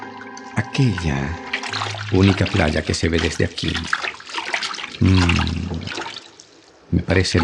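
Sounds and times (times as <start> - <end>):
speech: 0.6 - 4.1, 5.0 - 6.0, 7.1 - 7.4
sea water rushing as a diver plunges under near a small island: 0.8 - 7.4
deep gurgling surge of sea water: 1.4 - 6.4.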